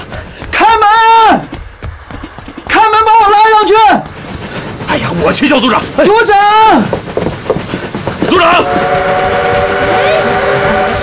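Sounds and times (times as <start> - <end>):
train rumbling: 0.0 - 11.0
speech: 5.4 - 7.0, 8.4 - 9.2
train whistle: 8.3 - 11.0.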